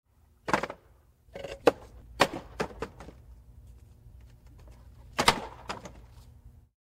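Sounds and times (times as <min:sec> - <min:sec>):
wooden pallet: 0:00.4 - 0:03.3, 0:04.2 - 0:06.3.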